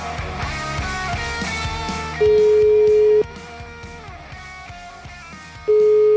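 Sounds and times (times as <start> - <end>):
busy music: 0.0 - 6.1
ringback tone of a telephone call being placed: 2.2 - 3.2, 5.7 - 6.1.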